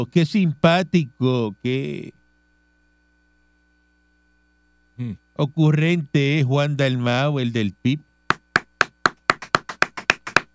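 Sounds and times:
speech: 0.0 - 2.2, 5.0 - 8.1
one person clapping hands: 8.3 - 10.5.

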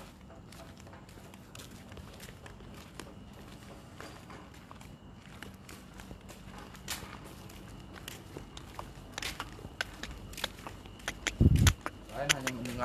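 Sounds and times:
footsteps walking: 0.0 - 12.8.

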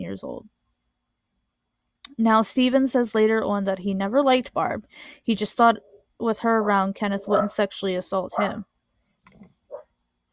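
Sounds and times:
speech: 0.1 - 0.6, 2.1 - 8.7
faint dog barks: 7.3 - 7.6, 8.4 - 8.6.

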